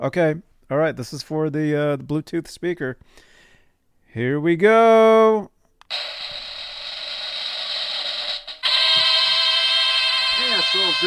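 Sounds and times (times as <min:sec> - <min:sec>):
speech: 0:00.0 - 0:03.3, 0:04.1 - 0:06.0, 0:10.7 - 0:11.0
giveaway prize wheel spinning and clicking: 0:05.9 - 0:11.0.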